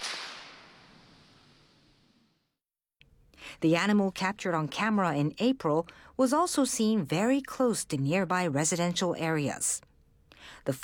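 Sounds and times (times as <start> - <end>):
firecracker bang outdoors to scare bears: 0.0 - 2.2
hissing echo of firecracker bang outdoors: 0.0 - 2.2
speech: 3.6 - 9.9, 10.5 - 10.8.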